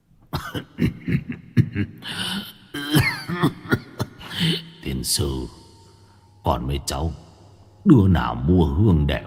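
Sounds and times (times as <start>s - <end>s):
old man coughing from incense smoke, acted by a voice: 0.3s - 1.8s, 2.7s - 4.6s
speech: 0.5s - 1.3s, 5.2s - 5.6s, 6.5s - 7.2s, 7.8s - 9.2s.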